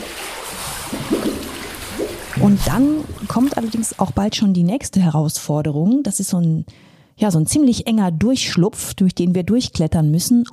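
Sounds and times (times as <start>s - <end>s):
water sloshing and splashing as people wade through deep water in a cave: 0.0s - 4.4s
speech: 2.4s - 10.5s.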